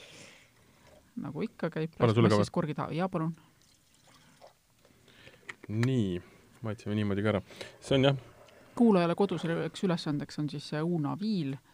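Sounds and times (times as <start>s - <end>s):
speech: 1.2s - 3.5s, 5.7s - 11.7s
homemade apple juice pouring from a bottle: 3.6s - 4.6s.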